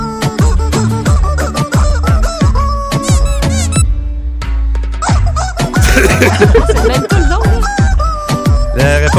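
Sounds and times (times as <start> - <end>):
musical backing: 0.0 - 9.1
squeaky rubber chicken toy squawking out a melody: 0.4 - 3.8, 5.0 - 5.9, 7.1 - 9.1
laughter: 5.8 - 7.7
speech: 6.2 - 7.4.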